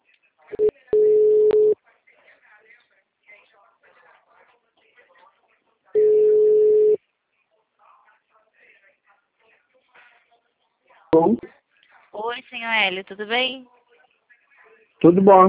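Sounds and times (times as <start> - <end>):
telephone ringback tone on an outgoing call: 1.0 - 1.8, 6.0 - 7.0
speech: 12.6 - 13.8, 15.0 - 15.4.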